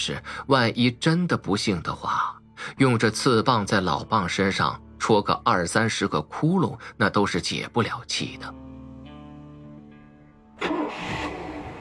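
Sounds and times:
speech: 0.0 - 8.6
boat motor starting as the boat sets off across the sea: 10.6 - 11.7.

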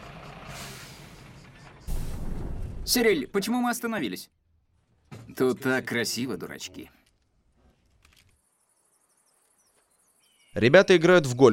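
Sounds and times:
bus engine rumbling on a mountain road: 0.0 - 3.4
bus air brakes hissing: 0.4 - 2.3
speech: 2.9 - 4.4, 5.4 - 7.0, 10.6 - 11.5.

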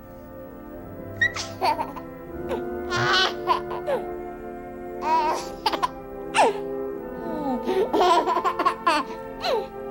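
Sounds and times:
baby crying: 1.2 - 4.1, 5.0 - 9.7.

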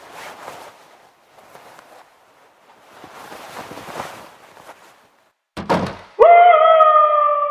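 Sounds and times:
faint shuffling: 0.0 - 5.5
apartment door slamming shut: 5.6 - 6.2
loud sustained wavering wail: 6.2 - 7.4.

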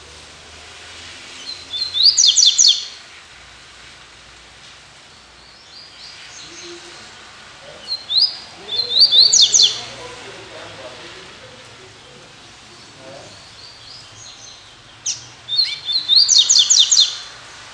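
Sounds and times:
Double-collared Seedeater chattering chirps: 1.5 - 2.9, 7.8 - 9.9, 12.8 - 17.3.

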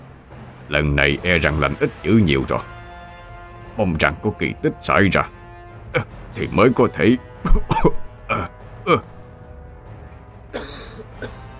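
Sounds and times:
speech: 0.7 - 2.7, 3.8 - 9.1
violent coughing: 7.4 - 9.1, 10.5 - 11.4.

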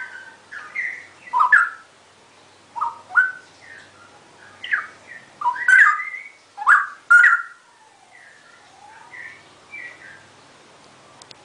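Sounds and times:
Oriental magpie-robin song: 0.0 - 10.6.

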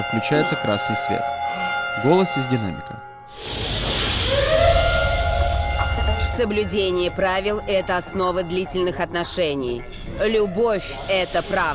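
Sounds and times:
speech: 0.1 - 3.6, 6.4 - 11.7
siren wailing in a room: 4.1 - 8.9.

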